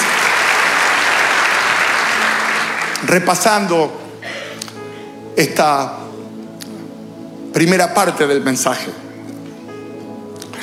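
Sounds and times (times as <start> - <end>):
congregation applauding during a church service: 0.0 - 4.9
speech: 3.1 - 4.0, 5.4 - 6.0, 7.6 - 9.0.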